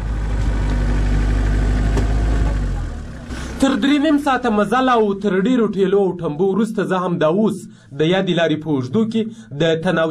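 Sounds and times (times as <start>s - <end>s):
engine of a geared car driving along a road blocked by stranded traffic: 0.0s - 5.9s
speech: 3.6s - 10.0s.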